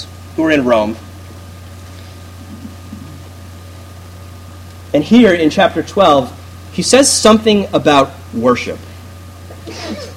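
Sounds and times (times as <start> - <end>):
steady low hum: 0.0 - 10.1
speech: 0.4 - 1.1, 4.9 - 8.9
faint sneeze from someone in a church audience during a sermon: 9.6 - 10.1.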